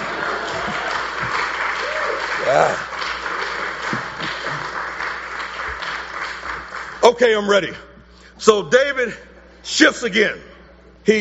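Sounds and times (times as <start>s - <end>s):
audience in a church clapping during a sermon: 0.0s - 7.5s
speech: 2.5s - 3.2s, 7.2s - 11.1s.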